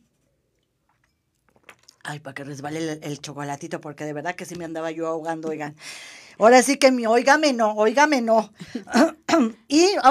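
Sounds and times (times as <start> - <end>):
person sipping wine: 0.5 - 2.0
speech: 2.0 - 10.0.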